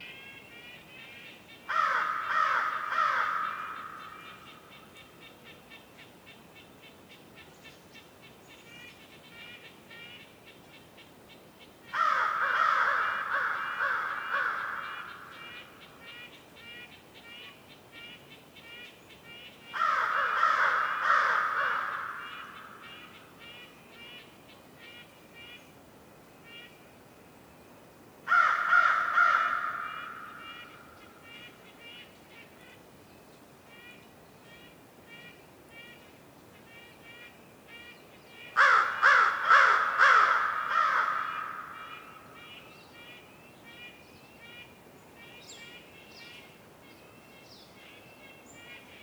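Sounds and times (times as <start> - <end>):
crow calls echoing in a winter forest morning in North Laurentian Woods Canada: 1.7 - 5.2, 11.9 - 18.8, 19.4 - 24.2, 28.3 - 32.1, 36.7 - 44.7.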